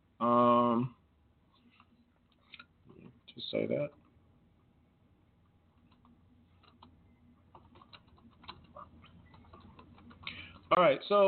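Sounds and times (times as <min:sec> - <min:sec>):
low hum: 0:00.0 - 0:11.2
speech: 0:03.5 - 0:04.0, 0:10.8 - 0:11.2
typing on a computer keyboard: 0:05.8 - 0:10.7.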